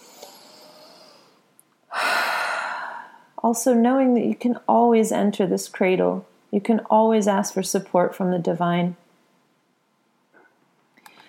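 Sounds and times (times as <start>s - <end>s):
deep breath in during a guided calming ritual: 0.0s - 3.3s
speech: 3.4s - 9.0s.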